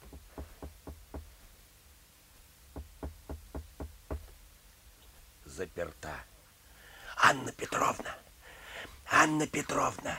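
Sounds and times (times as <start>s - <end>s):
knocking on a wooden door: 0.0s - 1.3s, 2.8s - 4.3s
speech: 5.6s - 6.3s, 7.3s - 8.2s, 9.2s - 10.1s.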